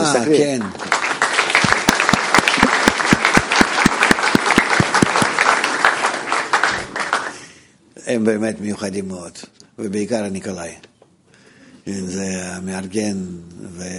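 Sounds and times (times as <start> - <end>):
speech: 0.1 - 0.9, 8.1 - 10.9, 11.9 - 13.9
crowd applauding: 0.1 - 7.6
rhythmic unison clap: 0.5 - 7.6.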